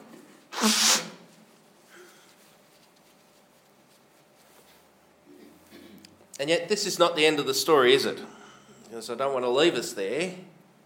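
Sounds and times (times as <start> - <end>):
person sneezing during a sermon: 0.5 - 1.3
speech: 0.6 - 0.8, 6.4 - 8.4, 9.0 - 10.5.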